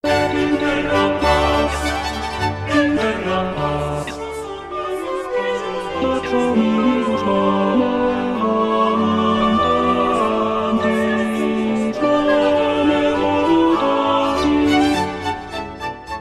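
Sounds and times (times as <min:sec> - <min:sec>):
tenor singing: 0:00.0 - 0:15.8.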